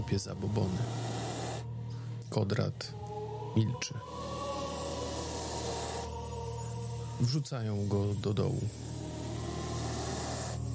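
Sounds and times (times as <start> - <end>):
many snakes hissing furiously: 0.0 - 1.9, 4.0 - 7.2, 8.4 - 10.7
speech: 0.1 - 1.1, 2.3 - 3.0, 3.6 - 4.3, 7.2 - 9.0.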